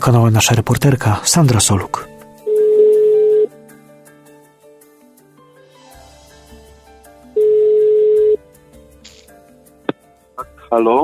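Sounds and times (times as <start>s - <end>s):
speech: 0.0s - 2.1s, 10.8s - 11.0s
telephone ringback tone calling a priests' helpline in Poland: 2.4s - 3.5s, 7.4s - 8.4s.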